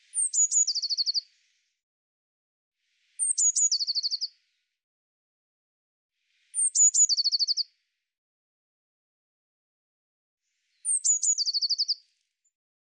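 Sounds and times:
Eurasian blue tit song with fast trill: 0.1 - 1.3, 3.2 - 4.3, 6.5 - 7.7, 10.7 - 12.0.

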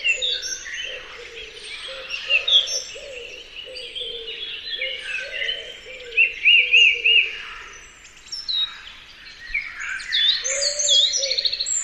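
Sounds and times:
bird cooing: 0.0 - 7.7, 10.4 - 11.8
several birds giving high whistled chirps and slurred notes: 0.0 - 11.8.

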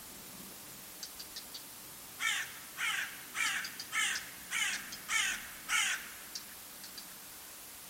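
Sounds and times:
bird giving harsh raspy caws: 2.2 - 6.6.

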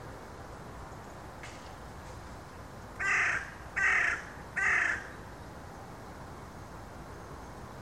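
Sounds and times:
faint steady background hiss: 0.0 - 7.8
bird giving harsh cawing calls: 3.0 - 5.2.

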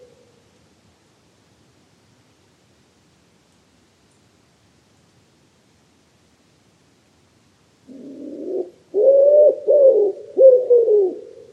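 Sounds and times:
common wood pigeon cooing: 7.9 - 11.4.

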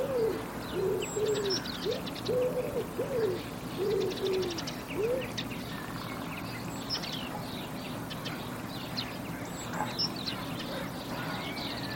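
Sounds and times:
bird making soft low arched cooing notes: 0.0 - 5.4
steady background hum: 0.0 - 11.9
speech: 1.3 - 5.6.

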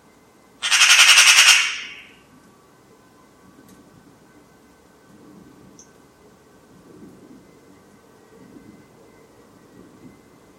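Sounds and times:
bird harsh pulsed rattling squawk: 0.6 - 2.2.

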